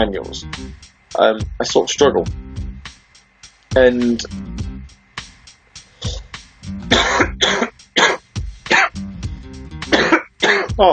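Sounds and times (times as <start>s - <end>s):
speech: 0.0s - 2.4s, 3.7s - 4.4s, 10.8s - 10.9s
throat clearing: 6.0s - 6.2s, 6.9s - 9.0s, 10.0s - 10.8s
harsh chesty coughing from a lingering cough: 6.0s - 9.0s, 9.8s - 10.8s.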